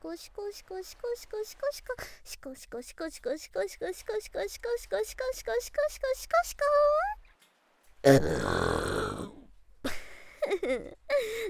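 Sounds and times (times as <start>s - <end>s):
speech: 0.1s - 7.2s, 8.0s - 9.4s, 10.5s - 11.4s
loud drawn-out burp: 8.0s - 9.5s
throaty vocal sounds: 8.0s - 9.6s.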